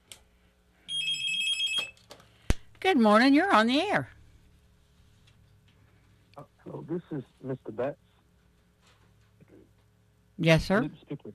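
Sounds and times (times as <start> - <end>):
telephone ringing: 0.9 - 2.0
speech: 2.8 - 4.2, 6.9 - 8.1, 10.4 - 11.3.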